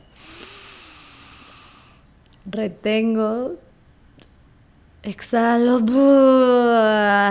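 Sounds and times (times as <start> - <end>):
deep inhale through the nose: 0.1 - 2.1
speech: 2.5 - 3.6, 5.0 - 7.3.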